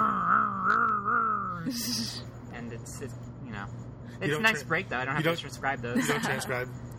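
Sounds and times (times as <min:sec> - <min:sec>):
voice imitating a revving motorcycle: 0:00.0 - 0:02.2
speech: 0:01.6 - 0:06.9.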